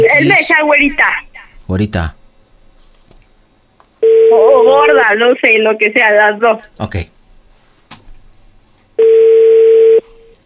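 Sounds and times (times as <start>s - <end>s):
speech: 0.2s - 2.2s, 4.3s - 7.1s
telephone dial tone: 9.0s - 10.4s.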